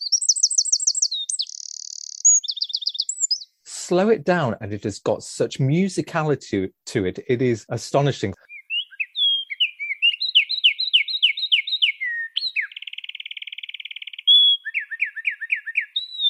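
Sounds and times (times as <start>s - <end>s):
wren singing: 0.0s - 3.7s, 8.3s - 16.2s
speech: 3.9s - 8.4s.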